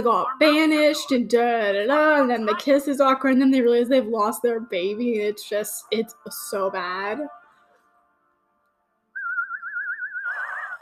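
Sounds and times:
speech: 0.0s - 7.4s
person whistling: 9.2s - 10.8s.

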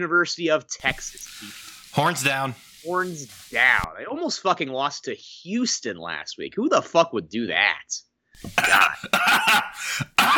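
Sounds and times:
speech: 0.0s - 10.3s
loud raspy throat clearing: 8.5s - 10.3s.

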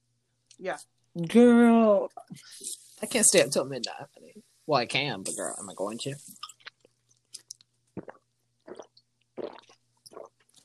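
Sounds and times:
low steady hum: 0.0s - 10.2s
speech: 0.6s - 6.5s
wet chewing gum smacks and clicks: 6.2s - 10.6s.

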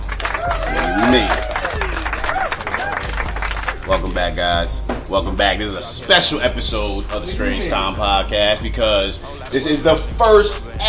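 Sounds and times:
crowd applause: 0.0s - 4.1s
people cheering: 0.0s - 5.3s
speech: 4.0s - 10.8s.

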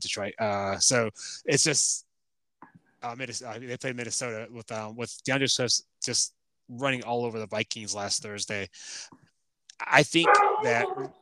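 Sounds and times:
speech: 0.0s - 2.1s, 2.7s - 9.2s, 9.8s - 11.1s
dog giving a bark-like yowl: 10.2s - 11.1s.

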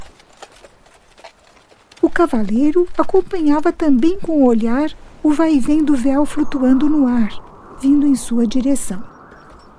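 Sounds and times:
hooves of a tall strong black horse carrying a rider clip-clopping at a walk: 0.0s - 5.0s
speech: 2.2s - 9.1s.

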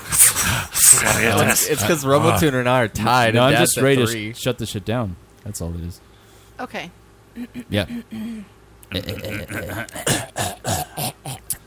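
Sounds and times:
speech: 1.0s - 11.4s
rough throat-clearing coughs: 8.9s - 11.6s.

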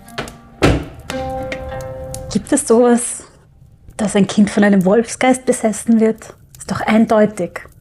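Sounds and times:
door shut by a man leaving to go outside: 0.2s - 1.7s
speech: 2.3s - 3.3s, 4.0s - 7.7s.

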